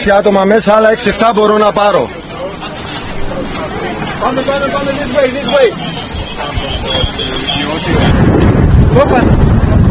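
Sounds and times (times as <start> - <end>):
speech: 0.0 - 2.2, 3.4 - 9.6
strong gusty wind in an area where a wildfire is spreading: 2.6 - 9.9.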